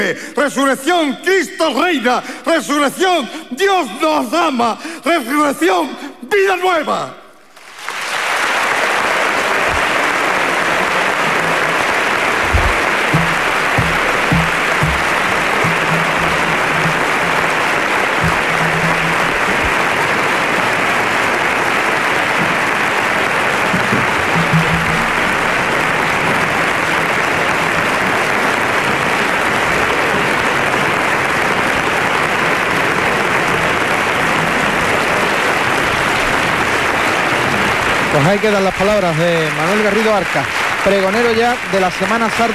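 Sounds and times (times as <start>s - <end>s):
speech: 0.0s - 7.2s, 38.3s - 42.5s
large audience clapping in flamenco bulerías rhythm in the Coliseo in Jerez: 0.0s - 42.5s.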